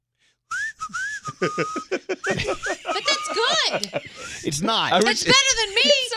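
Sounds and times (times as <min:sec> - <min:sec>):
person whistling through teeth: 0:00.5 - 0:04.4
laughter: 0:01.2 - 0:06.1
speech: 0:01.4 - 0:06.1.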